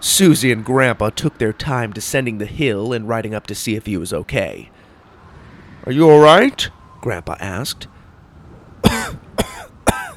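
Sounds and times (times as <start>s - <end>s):
speech: 0.2s - 4.8s, 5.8s - 8.0s
harsh hacking coughs from coughing up sand: 8.8s - 10.1s.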